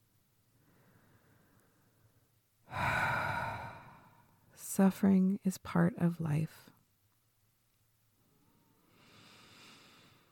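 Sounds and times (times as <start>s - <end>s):
slow breathy exhale to soothe and relax the body: 0.6s - 2.1s, 2.7s - 4.4s, 8.8s - 10.3s
speech: 4.8s - 6.8s.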